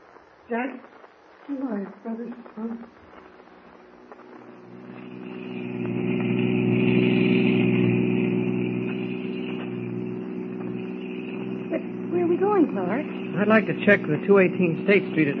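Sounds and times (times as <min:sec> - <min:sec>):
speech: 0:00.5 - 0:03.0, 0:13.4 - 0:15.3
car engine running: 0:03.8 - 0:15.3.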